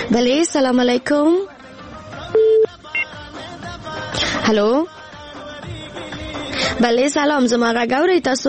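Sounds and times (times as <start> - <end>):
speech: 0.1 - 1.6, 3.9 - 5.0, 6.7 - 8.4
telephone line tone as a call is connected: 2.4 - 2.7
short high telephone beep: 2.4 - 3.1.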